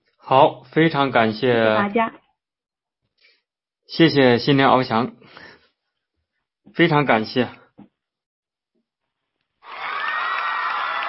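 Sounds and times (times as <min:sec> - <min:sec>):
speech: 0:00.3 - 0:02.2, 0:03.9 - 0:05.5, 0:06.7 - 0:07.6
audience applause at a group sharing session: 0:09.6 - 0:11.0
cheering: 0:09.6 - 0:11.0.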